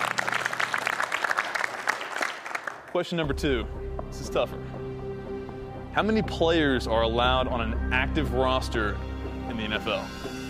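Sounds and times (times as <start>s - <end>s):
group of people clapping after a correct quiz answer: 0.0s - 3.2s
speech: 2.9s - 4.8s, 6.0s - 10.2s.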